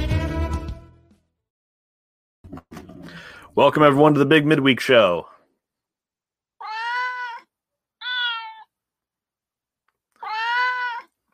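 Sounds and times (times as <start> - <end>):
speech: 3.6 - 5.3
cat meowing: 6.6 - 8.8, 10.2 - 11.2.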